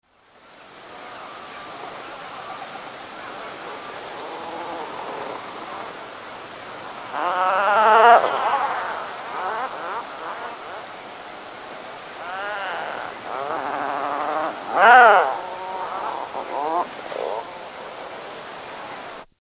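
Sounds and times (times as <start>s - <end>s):
tufted puffin calling: 3.2s - 6.0s, 7.1s - 11.0s, 12.1s - 18.3s.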